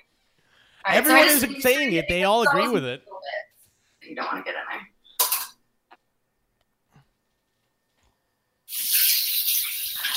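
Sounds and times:
speech: 0.9 - 3.1, 4.1 - 4.6
water running from a tap as a whisk is rinsed at a sink: 8.7 - 10.1.

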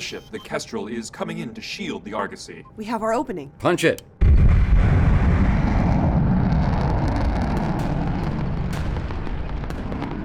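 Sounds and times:
speech: 0.0 - 4.9
missile launch roar in a space battle: 4.2 - 10.2.

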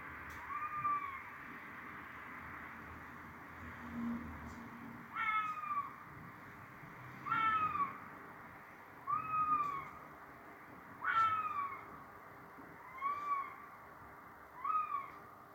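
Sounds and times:
red fox calling at night with high-pitched wavering yelps: 0.4 - 1.2, 5.1 - 6.0, 7.2 - 8.0, 9.0 - 10.1, 11.0 - 12.0, 12.8 - 13.8, 14.5 - 15.3.

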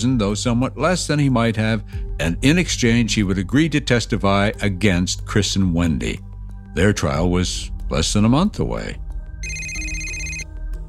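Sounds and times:
speech: 0.0 - 9.6
bright electronic phone ringtone chiming: 9.4 - 10.5.

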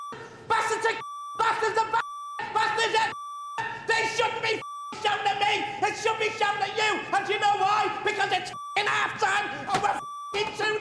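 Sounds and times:
high-pitched censor beep over swearing: 0.0 - 5.3, 8.5 - 10.7
speech: 0.8 - 2.0, 2.8 - 3.2, 4.2 - 10.7.

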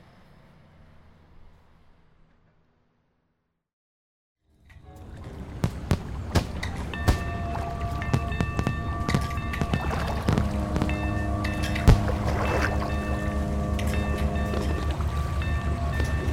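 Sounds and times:
yacht engine droning across the water: 4.7 - 16.3.

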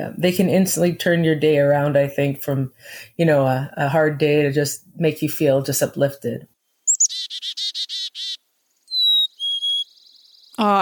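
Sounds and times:
speech: 0.0 - 6.5, 10.6 - 10.7
chickadee calls: 6.9 - 10.6.

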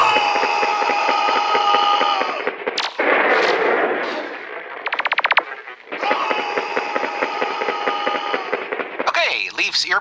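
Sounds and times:
gunfire from a gun in a lobby: 0.0 - 9.9.

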